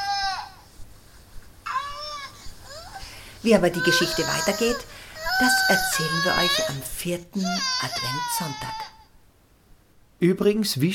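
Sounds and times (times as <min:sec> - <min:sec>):
baby crying: 0:00.0 - 0:00.7, 0:01.7 - 0:09.2
speech: 0:03.4 - 0:09.0, 0:10.2 - 0:10.9.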